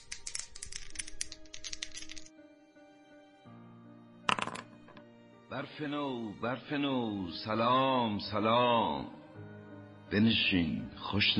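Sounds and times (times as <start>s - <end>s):
dice clattering across a wooden backgammon board: 0.0s - 2.3s, 4.3s - 5.0s
speech: 5.6s - 9.2s, 10.1s - 11.3s.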